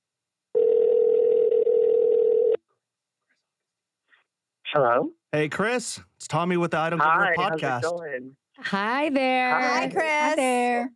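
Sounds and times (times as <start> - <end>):
telephone dial tone while a call is placed: 0.6 - 2.6
speech: 4.7 - 10.9.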